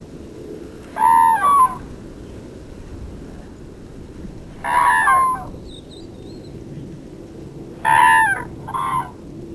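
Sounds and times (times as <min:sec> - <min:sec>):
steady low background noise: 0:00.0 - 0:09.5
crane trumpeting calls: 0:00.8 - 0:02.0, 0:04.5 - 0:06.5, 0:07.8 - 0:09.4.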